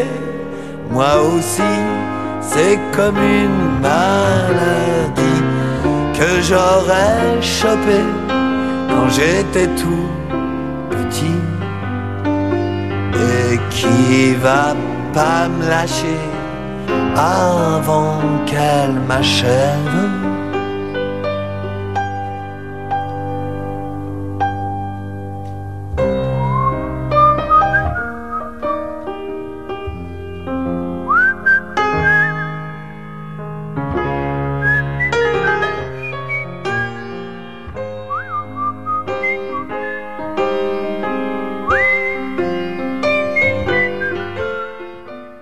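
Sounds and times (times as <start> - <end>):
soft instrumental backing: 0.0 - 45.4
speech: 0.9 - 5.3, 6.2 - 8.3, 9.0 - 10.2, 11.1 - 11.6, 13.8 - 16.3, 17.2 - 20.2
person whistling a tune with sliding pitch bends: 26.2 - 28.8, 31.1 - 32.5, 34.6 - 36.9, 38.1 - 40.2, 41.7 - 42.3, 43.1 - 44.9.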